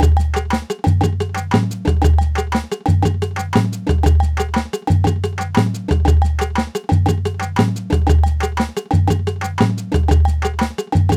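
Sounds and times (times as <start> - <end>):
percussion groove: 0.0 - 11.1.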